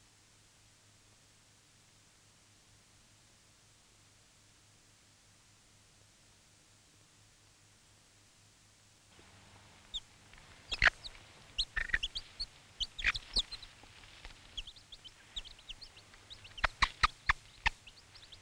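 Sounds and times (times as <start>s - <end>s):
chicks peeping: 9.2s - 18.4s
mother hen giving a food-offering call to her chicks: 9.5s - 18.4s.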